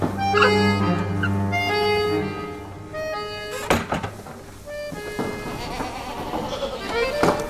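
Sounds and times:
goats from a herd bleating: 0.2s - 3.2s, 5.2s - 7.4s.

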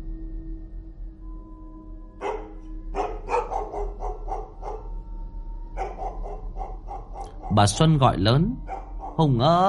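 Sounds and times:
low steady hum: 0.0s - 9.6s
household dog barking outside: 2.2s - 5.0s, 5.8s - 7.6s, 8.6s - 9.2s
speech: 7.5s - 9.6s.

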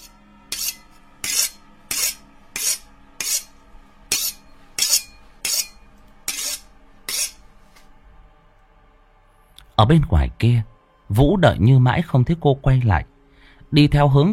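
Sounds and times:
knife blade being sharpened: 0.0s - 3.5s, 4.1s - 7.4s
steady tonal background: 0.0s - 14.3s
speech: 9.8s - 13.1s, 13.7s - 14.3s.

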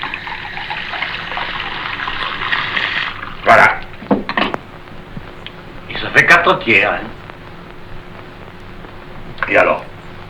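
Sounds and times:
water pouring into a mixed drink: 0.0s - 3.4s
speech: 6.2s - 7.2s, 9.5s - 9.8s.

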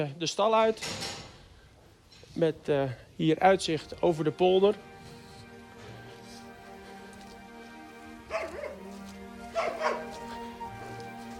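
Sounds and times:
speech: 0.0s - 1.2s, 2.4s - 4.9s
farm dog whining and whimpering at being left behind: 8.3s - 8.9s, 9.5s - 10.6s.

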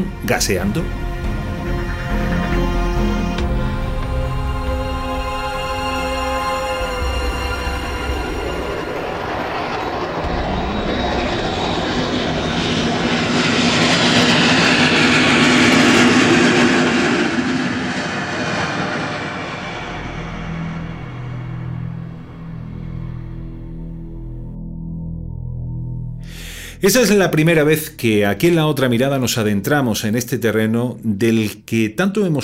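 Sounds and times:
speech: 0.0s - 1.0s, 26.8s - 32.4s
airplane engines roaring overhead as aircraft pass: 0.0s - 24.6s.

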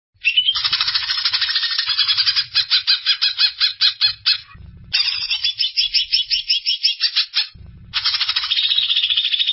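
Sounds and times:
greater green leafbird song with rapid rattling and warbled notes: 0.2s - 9.5s
faint low rumble: 4.0s - 6.4s, 7.6s - 8.9s.

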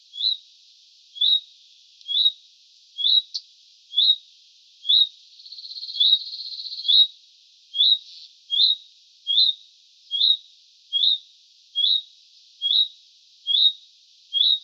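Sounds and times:
juvenile common redstart calling with high upslurred note: 0.0s - 0.4s, 1.1s - 2.4s, 3.0s - 4.2s, 4.8s - 7.1s, 7.7s - 11.2s, 11.8s - 14.6s
faint background hiss: 0.0s - 14.6s.

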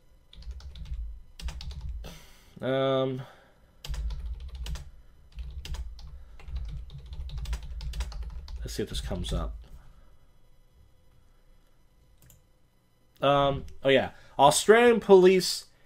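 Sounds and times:
typing on a computer keyboard: 0.3s - 2.0s, 3.8s - 8.7s
speech: 2.6s - 3.4s, 8.7s - 9.6s, 13.2s - 15.7s.

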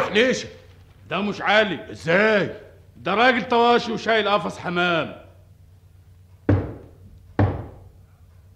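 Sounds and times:
speech: 0.1s - 5.2s
heavy knocking on a door: 6.4s - 7.9s.

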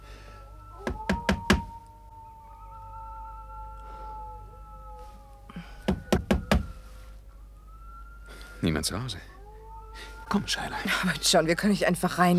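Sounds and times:
sharp raps knocking on a door: 0.8s - 1.7s, 5.9s - 6.8s
speech: 8.6s - 9.4s, 10.3s - 12.3s.

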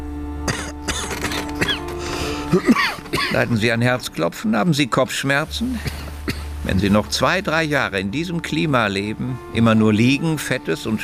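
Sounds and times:
man coughing at a doctor's request during an examination: 0.5s - 3.5s, 5.6s - 6.5s
speech: 2.5s - 6.0s, 6.7s - 11.0s.

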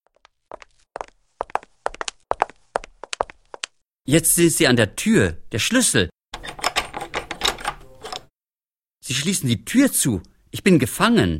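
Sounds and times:
footsteps of two people along a corridor and up house stairs at night: 0.0s - 3.8s
speech: 4.1s - 6.1s, 9.1s - 11.3s.

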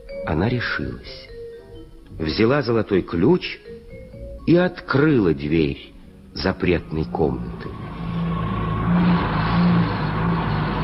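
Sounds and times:
speech: 0.2s - 1.3s, 2.1s - 3.7s, 4.5s - 8.0s, 8.9s - 9.3s
low droning hum: 6.3s - 10.8s
car engine revving: 6.4s - 10.8s.

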